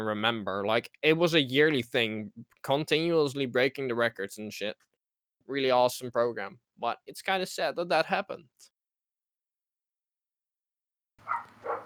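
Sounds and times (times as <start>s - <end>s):
speech: 0.0s - 4.9s, 5.5s - 8.7s
dog barking: 11.2s - 11.8s.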